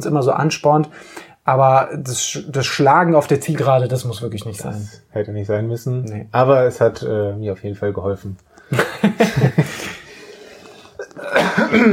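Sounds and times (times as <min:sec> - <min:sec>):
speech: 0:00.0 - 0:09.8, 0:11.7 - 0:11.9
laughter: 0:08.6 - 0:10.1
coughing: 0:10.7 - 0:11.9.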